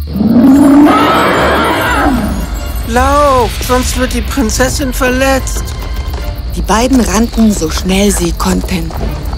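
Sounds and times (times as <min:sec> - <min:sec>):
dragon roaring in a cave: 0:00.1 - 0:02.5
speech: 0:02.9 - 0:05.7, 0:06.6 - 0:09.3.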